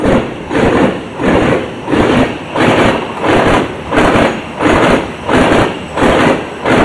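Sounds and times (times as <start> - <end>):
train wheels knocking over a railway switch: 0.0 - 6.8.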